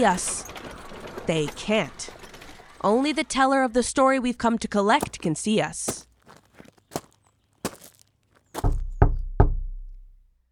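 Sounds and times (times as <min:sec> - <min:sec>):
speech: 0:00.0 - 0:00.5, 0:01.3 - 0:02.2, 0:02.8 - 0:06.0
light footsteps approaching: 0:05.0 - 0:09.0.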